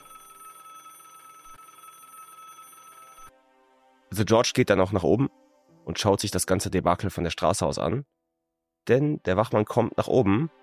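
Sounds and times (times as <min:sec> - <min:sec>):
telephone bell ringing: 0:00.0 - 0:03.3
speech: 0:04.2 - 0:08.2, 0:08.8 - 0:10.6.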